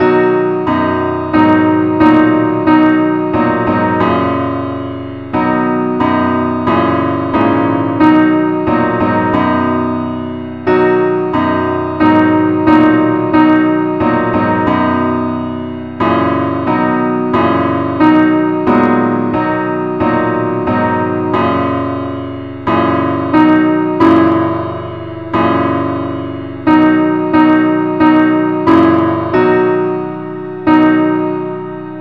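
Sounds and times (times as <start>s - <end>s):
musical accompaniment in key B: 0.0s - 31.9s.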